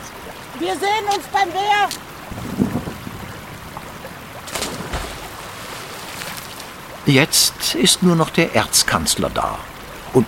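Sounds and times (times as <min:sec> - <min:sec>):
rushing water of a river swollen by snowmelt: 0:00.0 - 0:10.2
speech: 0:00.6 - 0:02.0, 0:07.1 - 0:10.2
wind noise: 0:01.1 - 0:07.0.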